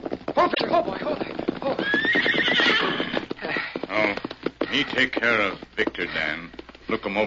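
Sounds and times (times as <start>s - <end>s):
horse hooves clip-clopping as a rider arrives at a camp: 0.0s - 7.2s
speech: 0.5s - 2.4s, 4.7s - 7.2s
horse whinnying: 0.5s - 4.1s.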